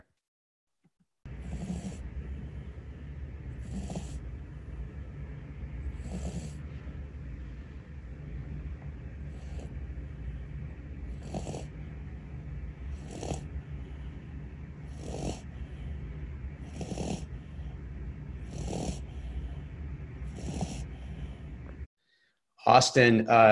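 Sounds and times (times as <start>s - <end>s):
dog snoring loudly: 1.3s - 2.7s, 3.5s - 4.4s, 5.7s - 6.8s, 9.2s - 10.0s, 11.0s - 12.0s, 12.8s - 14.1s, 14.8s - 15.9s, 16.6s - 21.4s
constant low hum: 1.3s - 21.9s
speech: 22.7s - 23.4s.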